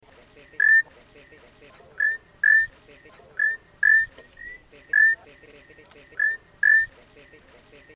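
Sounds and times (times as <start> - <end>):
Eleutherodactylus patriciae Hispaniolan cordillera frog short rising trill in Valle Nuevo Dominican Republic: 2.0 - 2.7, 3.4 - 5.2, 6.2 - 6.9.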